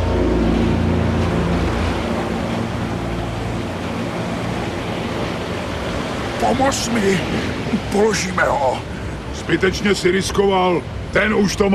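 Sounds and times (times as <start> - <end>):
low rumbling drone: 0.0 - 8.1
rough sea waves churning: 0.0 - 11.7
speech: 6.5 - 8.9, 9.5 - 11.7.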